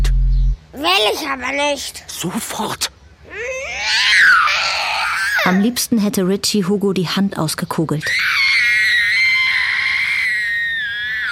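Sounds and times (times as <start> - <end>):
speech: 0.8 - 2.9, 5.5 - 8.4
boy screaming while being pulled by the arm: 3.3 - 5.6, 8.1 - 11.3.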